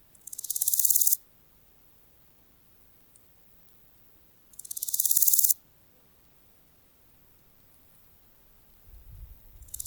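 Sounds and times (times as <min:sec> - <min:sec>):
Chrysochraon dispar grasshopper: 0:00.1 - 0:01.2, 0:04.5 - 0:05.6, 0:09.6 - 0:09.8.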